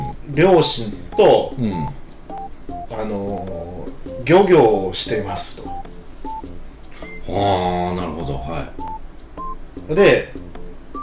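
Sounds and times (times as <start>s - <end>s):
speech: 0.3s - 2.0s, 2.9s - 5.9s, 7.3s - 8.8s, 9.8s - 10.4s
electronic telephone keypad dialing beeps: 1.8s - 2.9s, 8.8s - 9.6s.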